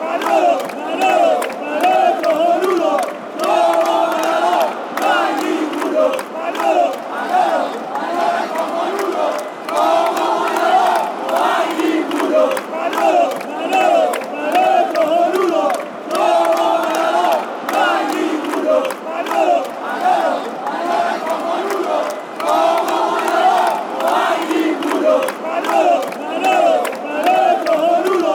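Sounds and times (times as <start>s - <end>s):
Spanish chant: 0.0s - 28.3s.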